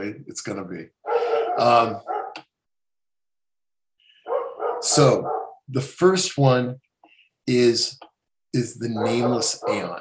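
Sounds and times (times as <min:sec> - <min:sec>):
speech: 0:00.0 - 0:02.1, 0:04.8 - 0:06.8, 0:07.5 - 0:10.0
wolf dog barking harshly: 0:01.0 - 0:02.4, 0:04.2 - 0:05.6, 0:08.9 - 0:10.0.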